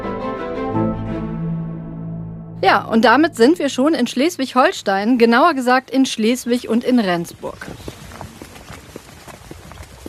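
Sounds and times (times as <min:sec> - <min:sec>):
speech: 0:02.6 - 0:07.8
footsteps of several people walking on a hard surface: 0:07.4 - 0:10.0.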